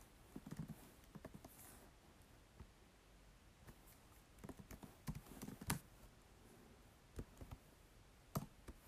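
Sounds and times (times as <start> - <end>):
typing on a laptop keyboard: 0.3 - 1.6, 4.4 - 5.9, 7.2 - 7.7, 8.3 - 8.8.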